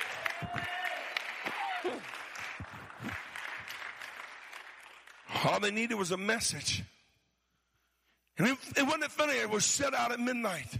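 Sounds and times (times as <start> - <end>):
audience shouting praise and cheering: 0.0 - 2.2
audience clapping hands: 0.0 - 5.7
speech: 1.8 - 2.2, 5.4 - 6.9, 8.4 - 10.7.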